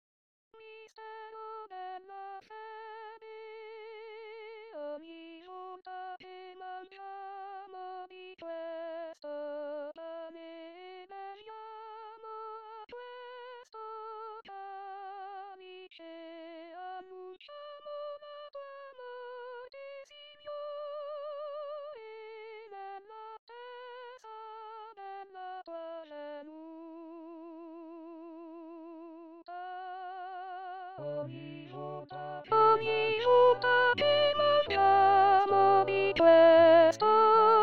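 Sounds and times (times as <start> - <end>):
tenors singing: 31.0 - 37.6.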